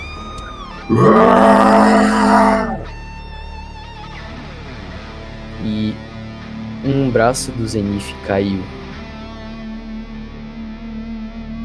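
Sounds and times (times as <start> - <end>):
speech: 0.9 - 2.7, 7.1 - 8.8
person screaming in pain from a blow: 0.9 - 2.9.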